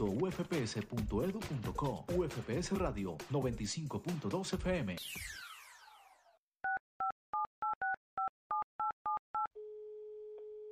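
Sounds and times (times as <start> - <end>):
speech: 0.0 - 5.4
falling sweep tone: 5.0 - 6.3
telephone two-tone keypad beeps: 6.6 - 9.5
steady continuous telephone tone: 9.1 - 10.6.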